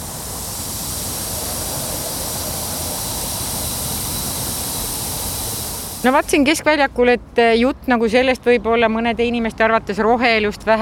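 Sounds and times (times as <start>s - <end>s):
steam fountain hissing and spraying vapour: 0.0s - 6.6s
speech: 6.0s - 10.8s.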